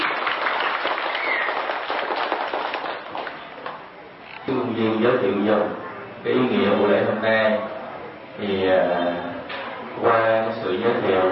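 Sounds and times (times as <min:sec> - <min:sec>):
audience applause: 0:00.0 - 0:03.8
speech: 0:04.5 - 0:07.8, 0:08.4 - 0:09.3, 0:10.0 - 0:11.3.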